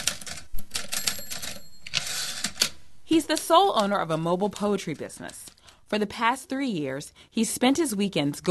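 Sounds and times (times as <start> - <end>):
poet's typewriter typing: 0.0 - 5.5
speech: 3.1 - 8.4.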